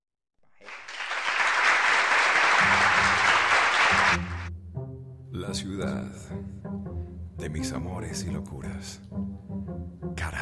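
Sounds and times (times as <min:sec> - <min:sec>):
loud dense applause from a group: 0:00.4 - 0:04.5
speech: 0:05.5 - 0:09.6.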